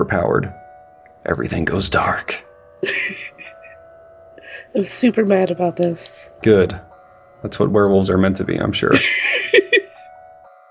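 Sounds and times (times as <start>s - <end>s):
speech: 0.0s - 0.6s, 1.2s - 3.3s, 4.7s - 9.4s
school bell chiming: 0.6s - 10.6s
laughter: 2.8s - 3.8s, 8.8s - 10.0s.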